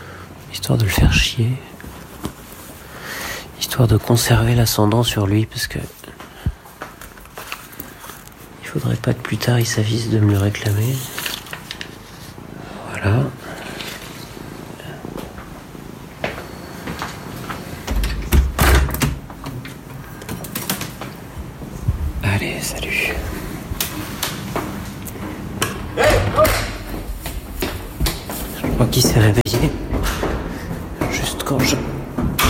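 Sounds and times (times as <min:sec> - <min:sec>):
steady noise: 0:00.0 - 0:32.4
speech: 0:00.6 - 0:01.7, 0:03.7 - 0:06.0, 0:08.7 - 0:11.2, 0:13.0 - 0:13.4
loud door bang: 0:17.9 - 0:19.6, 0:28.0 - 0:32.4.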